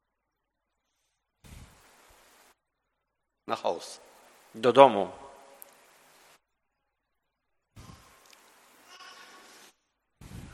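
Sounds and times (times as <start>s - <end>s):
speech: 3.5s - 5.2s
sheep bleating: 8.8s - 9.6s.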